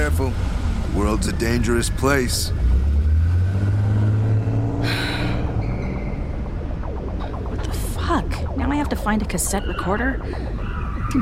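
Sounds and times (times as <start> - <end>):
security car engine revving and pulling off: 0.0 - 11.2
speech: 0.1 - 2.7, 8.1 - 11.2.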